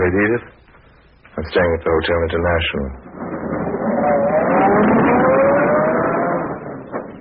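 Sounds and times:
speech: 0:00.0 - 0:00.6, 0:01.4 - 0:03.1, 0:04.7 - 0:05.1
limousine engine humming and revving as the car pulls away: 0:03.1 - 0:07.2.

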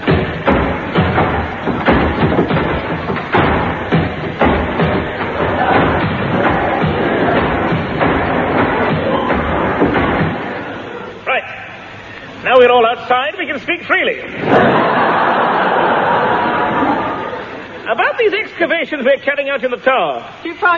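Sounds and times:
heavy doors swinging shut with dull thuds: 0:00.0 - 0:11.2
low crowd noise: 0:00.0 - 0:19.3
speech: 0:13.7 - 0:14.7, 0:18.8 - 0:20.7
laughter: 0:14.4 - 0:17.9.

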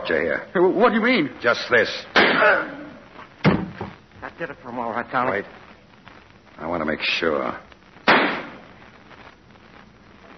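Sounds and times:
speech: 0:00.1 - 0:02.8, 0:04.4 - 0:05.6, 0:06.6 - 0:07.6
gunshot in an empty, deserted house: 0:02.2 - 0:02.6, 0:03.4 - 0:03.9, 0:08.0 - 0:08.6.

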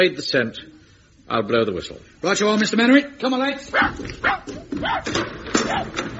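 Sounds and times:
speech: 0:00.0 - 0:06.1
dog barking and yelping: 0:03.7 - 0:06.1.

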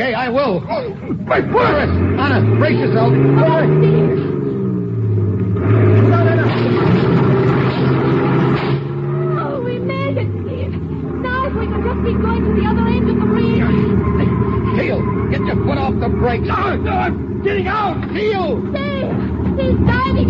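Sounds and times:
speech: 0:00.0 - 0:04.3, 0:15.8 - 0:20.2
heavy truck engine rumbling and revving: 0:00.0 - 0:20.2
voices calling out: 0:00.0 - 0:20.2.

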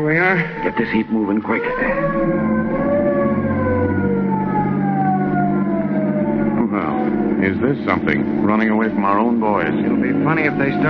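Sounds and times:
speech: 0:00.0 - 0:03.0, 0:06.7 - 0:10.8
low police car engine rumble: 0:00.0 - 0:10.8
police squad car siren wailing: 0:00.1 - 0:10.8.

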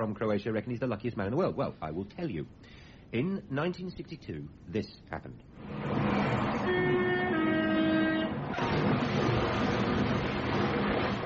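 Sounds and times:
speech: 0:00.0 - 0:06.4
crash impact: 0:05.6 - 0:07.1, 0:08.3 - 0:11.2
crashing roar: 0:05.6 - 0:11.2
train rumbling: 0:05.6 - 0:11.2
train horn blaring: 0:06.4 - 0:08.6.

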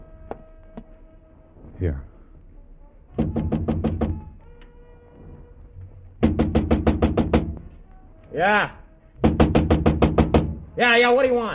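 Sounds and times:
speech: 0:01.8 - 0:02.1, 0:08.4 - 0:08.8, 0:10.8 - 0:11.5
rapid hard knocking on a door: 0:03.2 - 0:04.4, 0:06.2 - 0:07.8, 0:09.2 - 0:10.7.

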